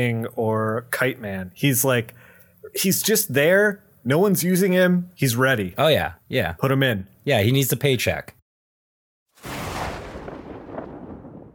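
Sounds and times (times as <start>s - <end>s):
speech: 0.0s - 8.4s
lightning strike thunderclap with sharp crack and roaring rumble: 9.4s - 11.5s.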